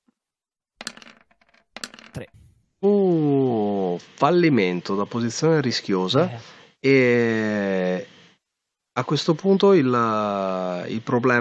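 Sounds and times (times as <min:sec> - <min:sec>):
dice clattering onto a hard surface: 0:00.8 - 0:02.5
speech: 0:02.2 - 0:03.0, 0:04.2 - 0:08.1, 0:09.0 - 0:11.3.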